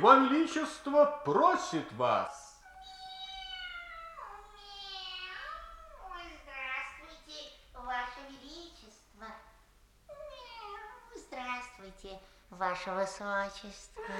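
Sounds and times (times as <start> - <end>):
speech: 0.0 - 2.5, 11.4 - 14.1
cat meowing: 2.5 - 6.8, 10.1 - 11.2.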